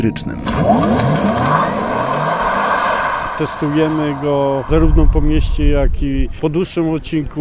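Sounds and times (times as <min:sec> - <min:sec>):
speech: 0:00.0 - 0:02.1, 0:03.4 - 0:07.4
electric car tyre noise on the road: 0:00.4 - 0:04.8.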